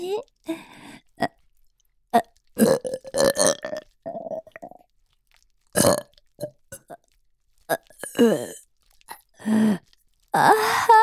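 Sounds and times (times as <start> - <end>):
burps after drinking milk: 0.4 - 1.4, 2.1 - 10.5
throaty vocal bursts: 2.2 - 4.8, 5.8 - 7.1, 7.7 - 10.9.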